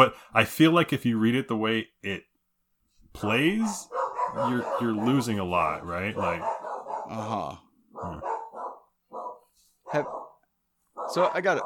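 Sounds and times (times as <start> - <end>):
speech: 0.0 - 2.3, 3.1 - 6.5, 7.1 - 8.3, 9.9 - 10.2, 11.1 - 11.6
dogs barking and yipping excitedly: 3.6 - 7.1, 7.9 - 11.6.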